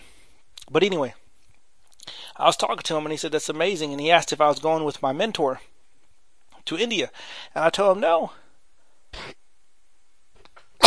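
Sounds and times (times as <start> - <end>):
speech: 0.7 - 1.2, 2.4 - 5.7, 6.6 - 8.4
person sneezing: 9.2 - 9.4.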